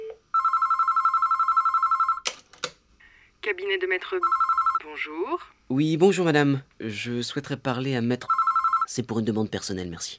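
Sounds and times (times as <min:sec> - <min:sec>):
telephone ringing in a rapid warbling trill during a call: 0:00.3 - 0:02.2, 0:04.2 - 0:04.9, 0:08.3 - 0:08.9
speech: 0:03.5 - 0:10.1.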